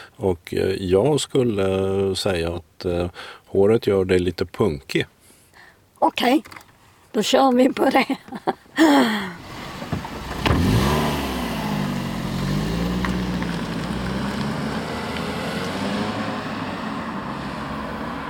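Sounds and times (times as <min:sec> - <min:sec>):
speech: 0:00.2 - 0:05.2, 0:06.0 - 0:09.4
car engine revving as the car drives away: 0:09.4 - 0:18.2.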